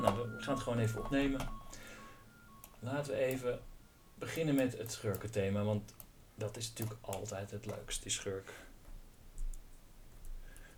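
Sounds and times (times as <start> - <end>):
metronome ticking: 0.0 - 6.1
speech: 0.5 - 1.9, 2.8 - 8.7.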